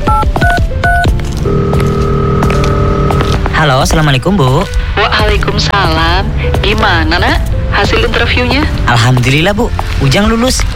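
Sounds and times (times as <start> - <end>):
phone keypad beeps from a number being dialled: 0.0 - 3.1
steady electronic phone tone: 1.4 - 3.4
speech: 3.6 - 10.7.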